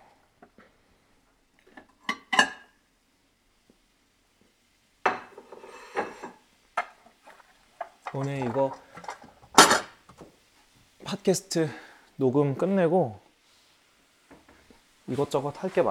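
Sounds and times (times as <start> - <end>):
wide ceramic plates clattering on a counter: 5.1 - 7.0, 7.8 - 10.0
ceramic plates scraping on a counter: 5.1 - 10.3
speech: 8.1 - 8.9, 11.2 - 13.2, 15.1 - 15.8.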